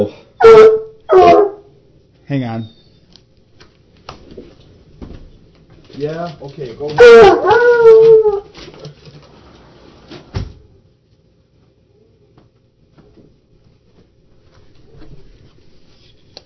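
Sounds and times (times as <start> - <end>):
dog whining: 0.4 - 1.7, 2.6 - 3.2, 6.9 - 8.6
speech: 2.3 - 2.8, 6.0 - 8.5.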